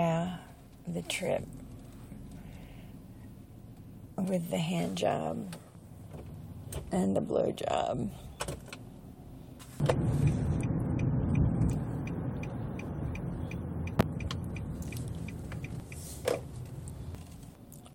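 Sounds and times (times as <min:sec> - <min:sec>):
car low engine and road rumble: 0:00.0 - 0:17.9
speech: 0:00.9 - 0:01.6, 0:04.2 - 0:05.6, 0:06.7 - 0:08.6, 0:09.8 - 0:10.4
car clicks and creaks as the vehicle slows: 0:05.4 - 0:07.0, 0:08.3 - 0:08.9, 0:09.6 - 0:17.9.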